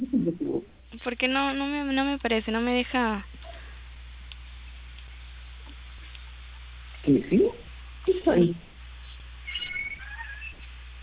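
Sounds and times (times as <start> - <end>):
steady low hum: 0.0 - 11.0
speech: 0.2 - 3.3, 7.0 - 7.6, 8.2 - 8.7
cat meowing high-pitched: 9.5 - 10.6.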